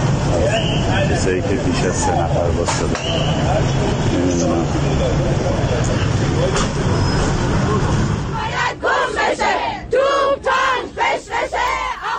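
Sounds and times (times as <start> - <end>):
crowd noise inside a city bus: 0.0 - 12.1
low rumble of a moving city bus: 0.0 - 12.1
speech: 1.2 - 8.0
group of women chanting protest slogans inside a city bus: 8.3 - 12.1.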